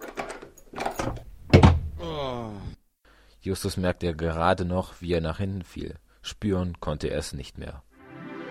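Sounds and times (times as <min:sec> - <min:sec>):
door creaking groan: 0:00.0 - 0:02.0
door banging open with a heavy thud: 0:00.8 - 0:02.0
speech: 0:03.4 - 0:07.9.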